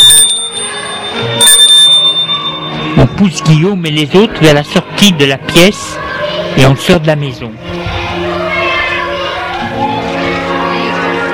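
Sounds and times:
bell ringing: 0.0s - 3.5s
busy noise: 0.0s - 11.3s
speech: 3.0s - 7.8s.

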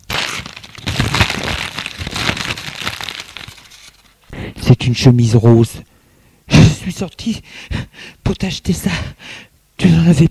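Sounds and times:
paper package being torn open: 0.0s - 4.3s
speech: 4.9s - 5.9s, 6.9s - 10.2s.

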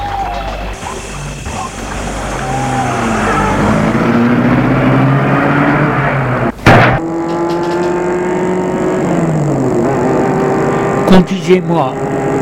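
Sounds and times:
car engine starting and accelerating through the gears at night: 0.7s - 12.4s
sharp knock: 6.6s - 8.0s
speech: 11.5s - 12.1s.

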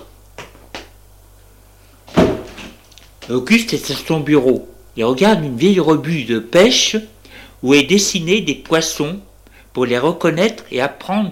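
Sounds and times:
office door opening with a thud: 2.1s - 2.8s
speech: 3.3s - 11.3s.

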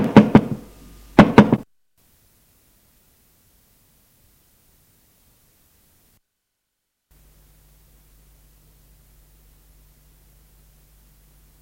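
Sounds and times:
knocking on a bedroom door: 0.0s - 0.6s, 1.2s - 1.6s.

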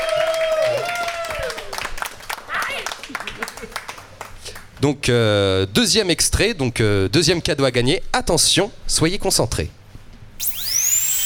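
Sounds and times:
audience applauding a prize winner: 0.0s - 4.1s
speech: 4.8s - 9.8s.

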